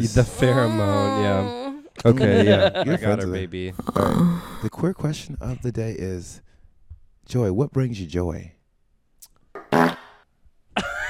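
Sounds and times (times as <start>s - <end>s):
speech: 0.0s - 6.5s, 7.3s - 8.6s
laughter: 2.0s - 3.4s
fart sound effect from soundboard button: 9.6s - 10.3s.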